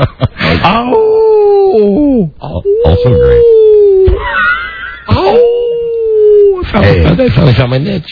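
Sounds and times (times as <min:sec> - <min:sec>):
person imitating a howl in a high falsetto voice: 0:00.9 - 0:04.2, 0:05.1 - 0:06.7
speech: 0:01.8 - 0:03.6, 0:06.7 - 0:08.1.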